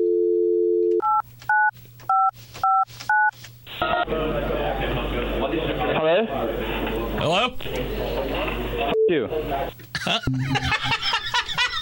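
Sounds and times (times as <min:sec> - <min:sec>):
steady telephone dial tone: 0:00.0 - 0:01.7
laughter: 0:03.7 - 0:06.8, 0:09.9 - 0:11.8
speech: 0:07.2 - 0:11.2.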